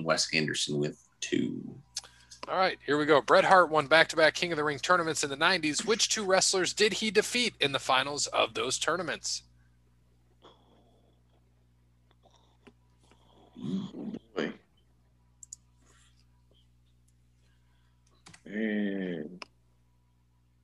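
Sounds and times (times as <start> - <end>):
speech: 0.0 - 9.5, 13.6 - 14.5, 18.5 - 19.4
typing on a computer keyboard: 18.1 - 18.4.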